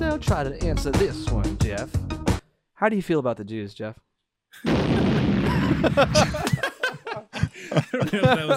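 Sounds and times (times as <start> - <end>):
speech: 0.1 - 2.1, 2.8 - 5.1, 5.8 - 6.5, 7.7 - 8.5
explosion sound effect: 4.7 - 6.4
people laughing and chuckling: 4.7 - 8.5.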